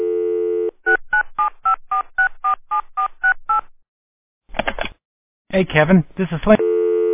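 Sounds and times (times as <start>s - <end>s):
telephone dial tone: 0.0s - 2.8s, 6.6s - 7.1s
speech: 5.6s - 6.7s.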